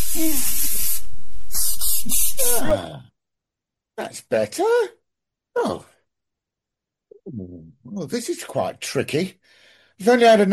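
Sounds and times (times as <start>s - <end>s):
perfume spritzing from a spray bottle: 0.0s - 2.7s
person murmuring faintly: 1.6s - 3.1s, 5.6s - 5.9s, 7.1s - 8.2s
speech: 4.3s - 5.0s, 5.6s - 5.9s, 7.3s - 10.5s.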